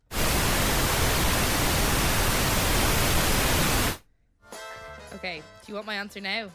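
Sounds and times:
steady loud pink noise: 0.0s - 4.0s
speech: 5.2s - 6.5s.

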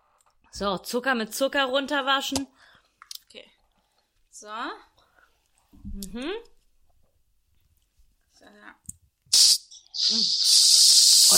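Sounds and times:
speech: 0.6s - 2.7s, 3.3s - 3.6s, 4.4s - 4.9s, 5.8s - 6.5s, 10.0s - 10.6s
whipped cream aerosol can spraying: 9.3s - 11.3s.

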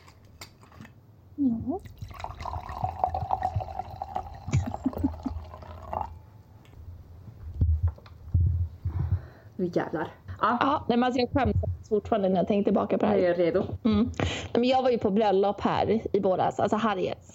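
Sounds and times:
speech: 1.4s - 2.2s, 9.6s - 17.3s
wine being poured into a glass: 1.8s - 6.2s
soft knocks and thumps: 7.3s - 9.3s.

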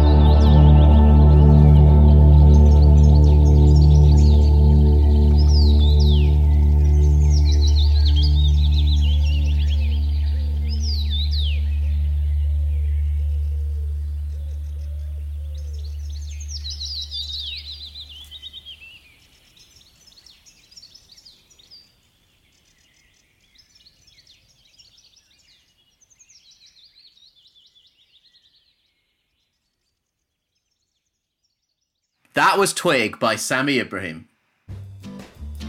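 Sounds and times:
birds singing with chirps and trills: 0.0s - 32.6s
steady low droning hum: 6.3s - 16.6s
speech: 32.4s - 34.3s.

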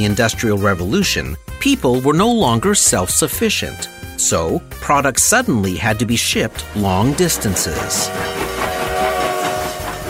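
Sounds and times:
speech: 0.0s - 8.8s
faint rhythmic clatter of steam train on rails: 6.3s - 10.0s
steam train rolling along rails with rumble and hiss: 6.3s - 10.0s.

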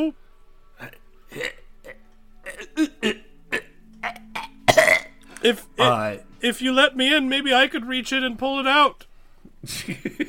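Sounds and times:
speech: 0.0s - 0.2s, 5.4s - 10.2s
person imitating hacking cough: 4.7s - 5.0s.

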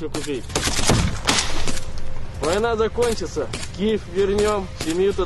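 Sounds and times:
gunshots fired by soldiers running through a trench: 0.1s - 5.1s.

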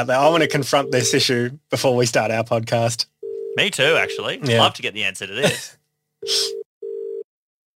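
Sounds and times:
speech: 0.0s - 6.6s
phone ringback tone through the line: 0.4s - 1.4s, 3.2s - 4.3s, 6.2s - 7.2s.

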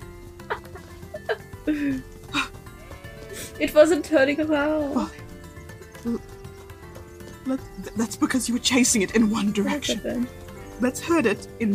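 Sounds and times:
steady outdoor background: 0.0s - 11.7s
speech: 1.7s - 2.1s, 3.6s - 5.2s, 6.0s - 6.3s, 7.4s - 11.7s
grazing sheep bleating: 2.2s - 7.7s.

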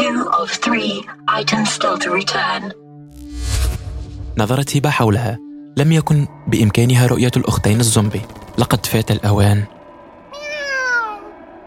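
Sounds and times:
speech: 0.4s - 2.8s, 4.4s - 9.8s
cat meowing: 10.3s - 11.4s.

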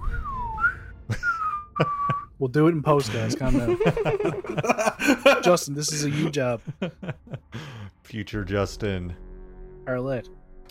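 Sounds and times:
person whistling a sliding tone imitating a sword swing: 0.0s - 2.3s
laughter: 1.1s - 2.2s, 2.9s - 7.9s
speech: 1.8s - 9.3s, 9.9s - 10.6s
breathy burst: 7.5s - 8.0s.

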